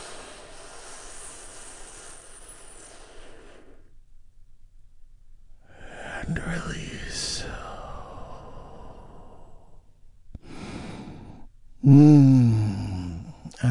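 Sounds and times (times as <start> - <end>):
deep slow breath in a relaxation exercise: 0.0 - 4.0, 6.9 - 13.6
person speaking: 5.9 - 8.6, 11.8 - 13.6.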